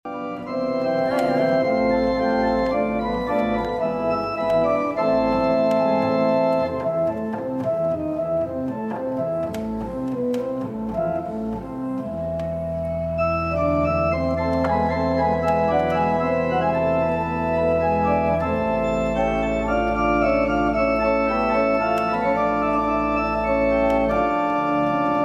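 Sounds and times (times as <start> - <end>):
organ of the Cathedral of Old Havana: 0.0 - 25.2.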